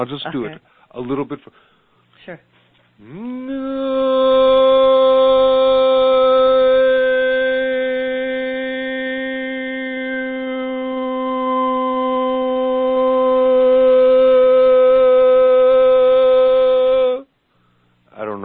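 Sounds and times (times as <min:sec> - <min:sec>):
speech: 0:00.0 - 0:04.6
person singing Hallelujah as a sustained vowel tone: 0:03.0 - 0:17.4.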